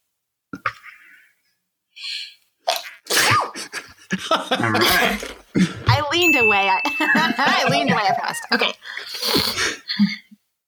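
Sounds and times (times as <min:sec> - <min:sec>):
person sneezing: 0:02.7 - 0:03.7, 0:04.8 - 0:05.4, 0:09.1 - 0:09.8
laughter: 0:03.6 - 0:05.8, 0:06.8 - 0:08.8
speech: 0:04.1 - 0:10.1
short inhale before a sneeze: 0:08.9 - 0:09.8.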